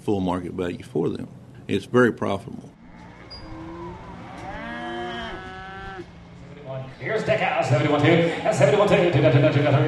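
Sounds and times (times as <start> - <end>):
speech: 0.0 - 2.8, 6.8 - 9.8
cattle lowing in a livestock auction barn: 2.7 - 6.6
cow mooing in a livestock auction barn: 2.8 - 6.3.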